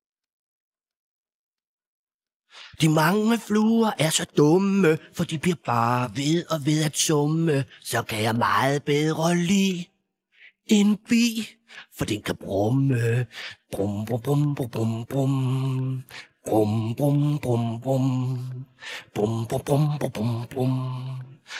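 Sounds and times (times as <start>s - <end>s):
vocals: 2.5s - 21.5s.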